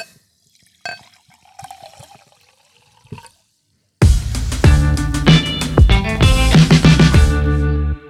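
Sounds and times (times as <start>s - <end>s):
mineral water poured into a glass: 0.0s - 3.6s
soft sparse fizzing crackles of mineral water: 0.0s - 3.8s
loud music: 4.0s - 8.0s.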